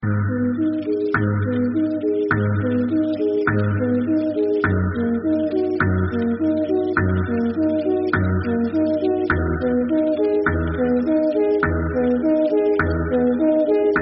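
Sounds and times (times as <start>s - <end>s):
background music: 0.0s - 14.0s.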